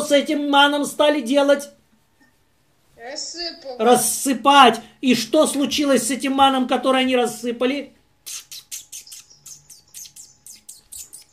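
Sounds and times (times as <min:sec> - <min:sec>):
speech: 0:00.1 - 0:01.8, 0:03.0 - 0:08.5
small birds chirping: 0:08.2 - 0:11.3.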